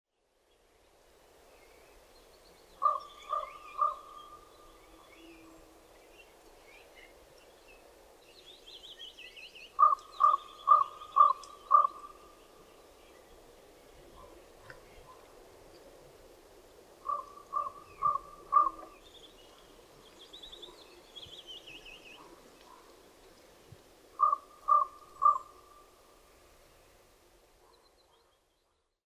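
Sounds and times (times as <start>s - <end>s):
raven calling: 2.8s - 5.8s, 9.7s - 12.4s, 17.0s - 19.0s, 24.1s - 26.0s.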